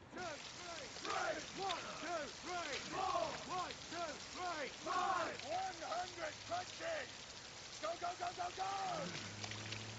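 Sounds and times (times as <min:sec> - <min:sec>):
steady rain: 0:00.0 - 0:09.9
several loud overlapping voices shouting and chanting a count during a military drill: 0:01.0 - 0:03.7, 0:04.4 - 0:05.4.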